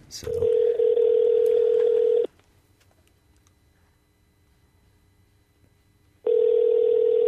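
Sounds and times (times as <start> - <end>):
speech: 0.1 - 0.6
telephone ringback tone: 0.3 - 2.3, 6.2 - 7.2.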